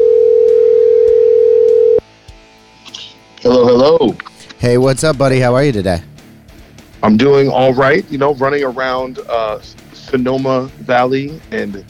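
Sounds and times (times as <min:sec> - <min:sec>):
telephone dial tone while placing a call: 0:00.0 - 0:02.0
speech: 0:04.0 - 0:06.1, 0:07.0 - 0:11.8.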